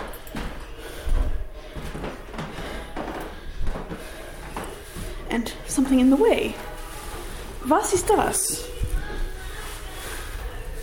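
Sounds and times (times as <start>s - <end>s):
person walking on old creaky wooden floorboards of a building: 0.0s - 10.8s
steady room noise: 0.0s - 10.8s
speech: 5.4s - 6.7s, 7.6s - 8.7s.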